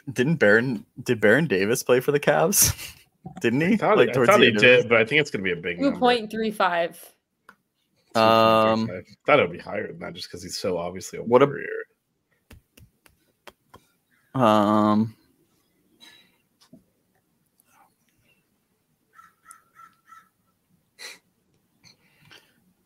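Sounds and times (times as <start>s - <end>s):
speech: 0.0s - 7.1s, 8.2s - 11.9s, 14.4s - 15.2s
harsh crow caw: 19.1s - 20.3s.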